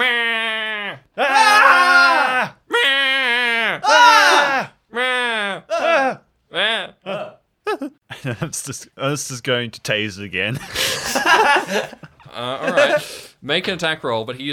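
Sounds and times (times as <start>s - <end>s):
person's voice mimicking a creature screaming with shrill shrieks: 0.0s - 7.4s
laughter: 7.1s - 8.8s, 10.5s - 13.3s
speech: 8.2s - 14.5s.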